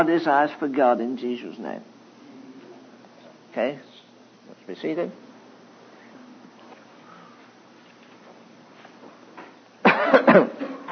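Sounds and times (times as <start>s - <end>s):
speech: 0.0s - 1.9s, 3.6s - 3.9s, 4.7s - 5.2s, 10.3s - 10.6s
audience members coughing: 9.9s - 10.9s.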